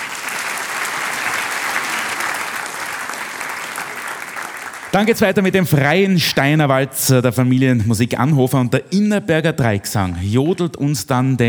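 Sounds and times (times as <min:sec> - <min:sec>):
audience applause: 0:00.0 - 0:05.6
speech: 0:04.9 - 0:11.4.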